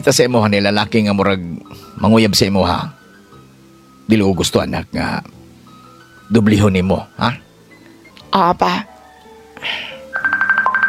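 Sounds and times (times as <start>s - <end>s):
speech: 0.0s - 3.0s, 4.1s - 5.4s, 6.3s - 7.4s, 8.3s - 8.9s, 9.6s - 9.9s
cellphone ringtone with repeating electronic pulses: 9.8s - 10.8s.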